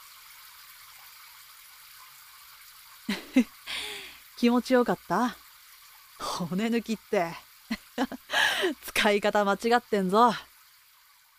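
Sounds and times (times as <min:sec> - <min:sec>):
running water from a shower spray rinsing hair: 0:03.0 - 0:10.4
speech: 0:03.1 - 0:03.6, 0:04.4 - 0:05.4, 0:06.4 - 0:10.5.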